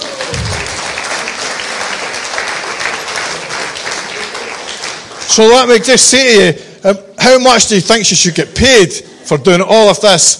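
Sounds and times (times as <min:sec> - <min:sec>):
crowd clapping: 0:00.0 - 0:06.4
speech: 0:05.3 - 0:10.3.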